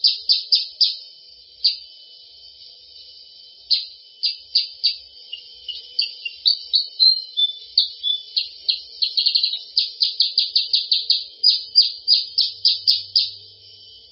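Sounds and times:
sooty-headed bulbul calling in fast runs of high chirping notes: 0:00.0 - 0:01.0, 0:03.7 - 0:13.4.

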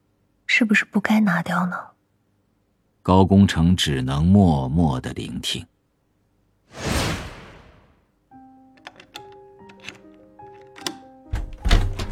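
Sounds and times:
speech: 0:00.6 - 0:01.9, 0:03.1 - 0:05.7
soft whoosh: 0:06.7 - 0:08.0
entrance door lock being unlocked with metallic clicks and thunks: 0:08.8 - 0:12.1.

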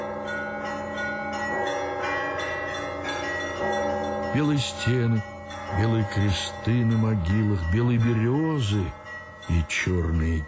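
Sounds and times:
heavy church bells pealing at night: 0:00.0 - 0:10.4
speech: 0:04.4 - 0:10.4.

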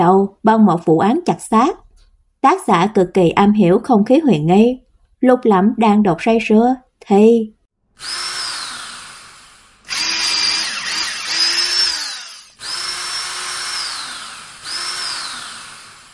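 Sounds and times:
speech: 0:00.0 - 0:01.8, 0:02.4 - 0:08.4
electric drill drilling into ice in a snowy valley: 0:08.0 - 0:16.1.

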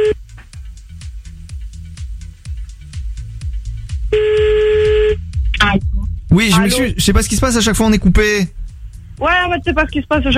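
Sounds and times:
steady buzzy telephone tone while calling someone back: 0:00.0 - 0:00.2, 0:04.1 - 0:06.8
rhythmic thumping music bed: 0:00.0 - 0:10.3
speech: 0:06.3 - 0:08.6, 0:09.2 - 0:10.3.

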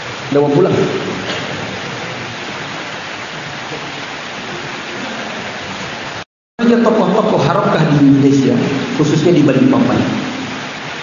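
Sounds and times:
rain: 0:00.0 - 0:11.0
speech: 0:00.3 - 0:01.1, 0:06.7 - 0:10.3.

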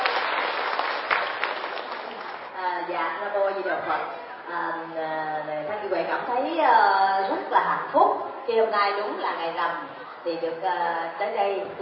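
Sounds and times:
audience applause at a ceremony at a monastery: 0:00.0 - 0:02.6
speech: 0:02.9 - 0:11.8.

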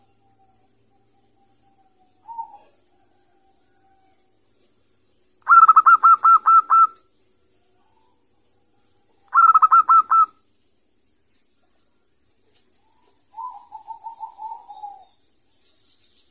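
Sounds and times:
zebra dove cooing: 0:01.3 - 0:04.1, 0:05.4 - 0:07.0, 0:09.2 - 0:10.4, 0:12.8 - 0:15.2.

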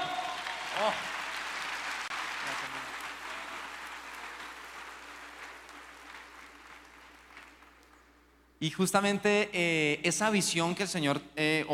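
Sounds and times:
church audience applause: 0:00.0 - 0:07.9
speech: 0:00.8 - 0:01.2, 0:08.6 - 0:11.7.

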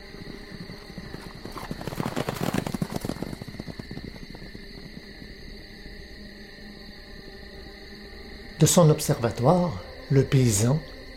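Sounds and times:
hooves clip-clopping as horses are ridden away: 0:00.0 - 0:06.1
speech: 0:08.6 - 0:10.9.

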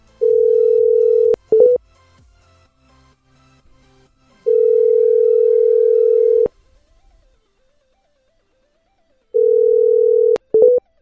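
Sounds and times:
telephone ringback tone after dialing a number: 0:00.2 - 0:01.8, 0:04.5 - 0:06.5, 0:09.4 - 0:10.8.

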